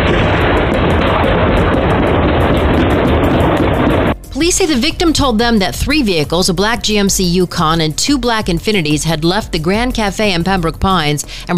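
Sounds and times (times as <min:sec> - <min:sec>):
rapid burst of gunshots captured by a home surveillance camera: 0:00.0 - 0:04.2
speech: 0:04.4 - 0:11.5.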